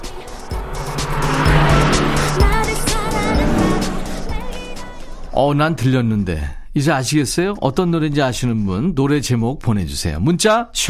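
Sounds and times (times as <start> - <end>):
rising engine whine of an accelerating car: 0.0 - 5.4
car engine revving as it accelerates to catch up with another car: 0.0 - 5.6
steady road noise: 0.0 - 5.9
speech: 5.4 - 10.8.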